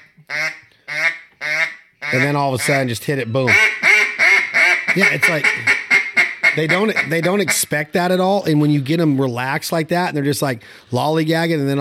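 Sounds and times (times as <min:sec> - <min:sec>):
duck call blown in flat hen mallard quacks: 0:00.0 - 0:07.7
speech: 0:02.1 - 0:03.7, 0:05.0 - 0:05.7, 0:06.6 - 0:11.7.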